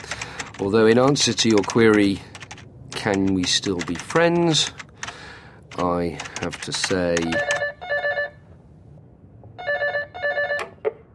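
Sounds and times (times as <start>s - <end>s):
low hum of room noise: 0.0s - 11.1s
speech: 0.6s - 2.3s, 3.0s - 4.8s, 5.7s - 7.5s
click as the phone line is picked up: 7.2s - 8.4s, 9.8s - 10.8s
telephone ringing with electronic trilling: 7.2s - 8.9s, 9.6s - 10.8s.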